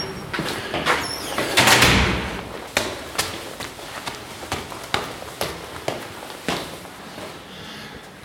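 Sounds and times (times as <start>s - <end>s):
door opening with a loud rushing slide: 0.0s - 2.5s
sharp knocks and steps: 0.0s - 7.5s.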